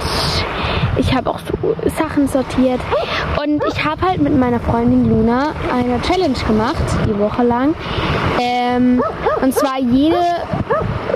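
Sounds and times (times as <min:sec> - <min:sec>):
low rumbling noise: 0:00.0 - 0:11.1
speech: 0:01.0 - 0:11.1
dog barking: 0:03.6 - 0:03.8, 0:09.0 - 0:11.1.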